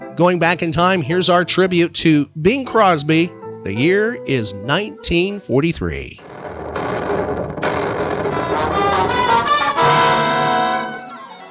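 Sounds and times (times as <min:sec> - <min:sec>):
speech: 0:00.0 - 0:06.2
explosions sinking a freighter off the coast of Africa: 0:06.2 - 0:10.6.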